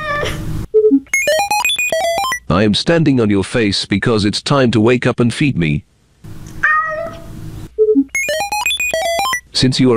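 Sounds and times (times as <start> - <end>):
electronic beeps and chirpy tones: 0.8 - 2.5, 7.8 - 9.5
speech: 2.5 - 5.9, 9.6 - 9.9
cat meowing into a cat translator: 6.6 - 7.3.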